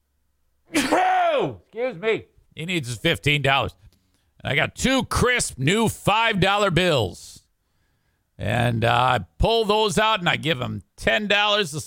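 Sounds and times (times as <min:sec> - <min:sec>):
loud sneeze: 0:00.7 - 0:01.6
speech: 0:01.4 - 0:03.8, 0:04.4 - 0:07.4, 0:08.4 - 0:11.8.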